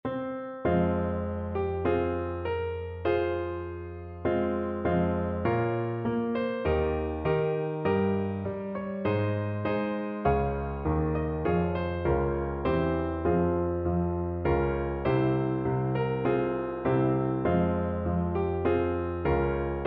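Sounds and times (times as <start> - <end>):
piece on piano: 0.0 - 19.8.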